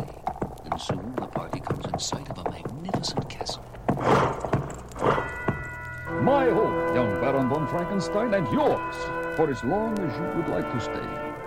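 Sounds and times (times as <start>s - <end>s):
horse hooves clip-clopping at a walking pace: 0.0s - 11.4s
speech: 0.8s - 4.5s, 6.2s - 11.2s
horse whinny: 3.9s - 5.7s.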